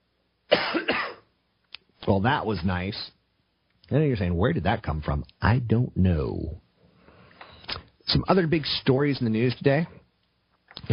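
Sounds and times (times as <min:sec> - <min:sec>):
loud harsh cough from one person: 0:00.5 - 0:01.3
speech: 0:02.1 - 0:03.2, 0:03.9 - 0:06.6, 0:08.1 - 0:10.0, 0:10.8 - 0:10.9.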